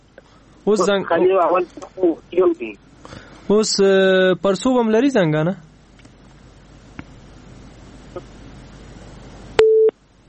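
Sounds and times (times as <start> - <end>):
speech: 0.6 - 2.8, 3.5 - 5.7
telephone busy tone after a call disconnects: 9.6 - 9.9.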